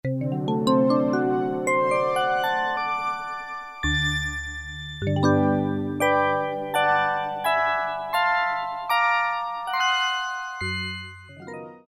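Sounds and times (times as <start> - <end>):
Casio VZ-10M synthesizer vibraphone piano combi: 0.0 - 11.8.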